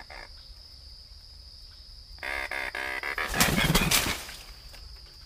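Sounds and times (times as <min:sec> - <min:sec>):
Anhinga clicking chatter: 0:02.2 - 0:04.5.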